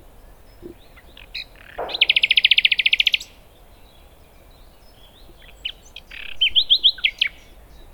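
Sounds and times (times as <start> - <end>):
common nightingale chirps: 0.5 - 7.9
common nightingale Luscinia megarhynchos trilling: 1.2 - 3.4
common nightingale bright repeated notes: 1.8 - 3.4.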